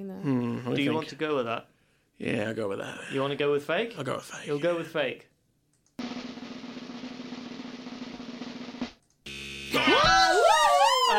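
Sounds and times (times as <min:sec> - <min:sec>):
speech: 0:00.0 - 0:05.3
game show wrong-answer buzzer: 0:09.2 - 0:10.0.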